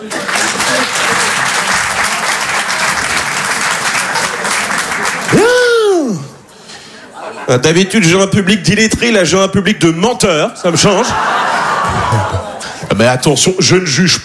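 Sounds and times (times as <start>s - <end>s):
laughter: 0.0s - 1.8s, 3.8s - 5.9s, 6.9s - 7.9s, 10.7s - 13.0s
large audience applauding at a stand-up comedy show: 0.0s - 5.7s, 11.5s - 12.7s
single loud whooping cheer: 5.2s - 6.4s
speech: 7.5s - 14.2s.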